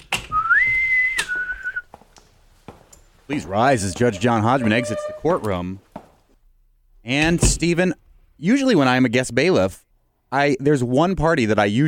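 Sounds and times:
bosun's whistle being piped: 0.3 - 1.9
speech: 3.3 - 5.9, 7.1 - 11.8.

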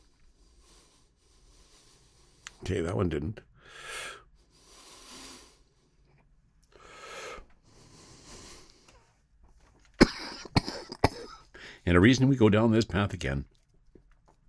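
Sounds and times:
breathy inhales and exhales from a hit of cannabis: 0.0 - 2.6, 3.6 - 6.1, 6.7 - 9.2
speech: 2.6 - 3.9, 11.9 - 13.6
harsh coughing after a hit of cannabis: 10.0 - 11.5.

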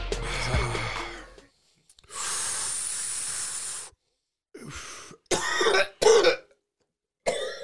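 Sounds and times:
wheezy breaths: 0.1 - 5.3
person coughing after taking a hit of weed: 5.3 - 6.5, 7.3 - 7.6.

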